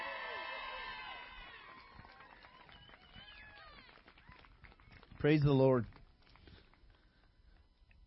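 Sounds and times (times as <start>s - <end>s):
church audience cheering and whooping for a team on stage: 0.0s - 3.9s
speech: 5.2s - 6.0s.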